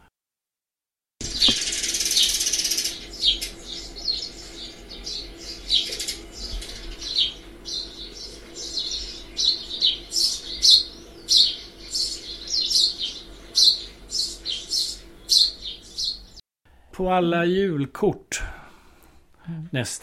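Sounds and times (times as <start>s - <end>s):
Eurasian tree sparrow calling: 1.2s - 16.4s
wingbeats or rustle: 1.2s - 16.4s
speech: 17.0s - 18.4s, 19.7s - 20.0s.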